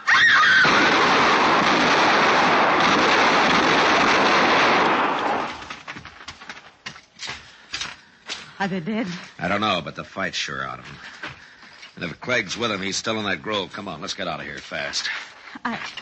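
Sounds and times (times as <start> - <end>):
woman screaming loudly: 0.0 - 0.7
dense barrage of gunfire: 0.6 - 5.9
speech: 8.6 - 11.3, 12.0 - 16.0.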